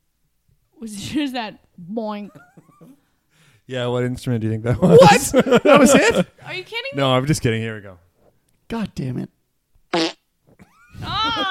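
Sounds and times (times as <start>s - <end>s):
speech: 0.8s - 2.6s, 3.7s - 8.0s, 8.7s - 9.4s
laughter: 4.8s - 6.4s, 10.8s - 11.4s
fart: 9.9s - 10.6s.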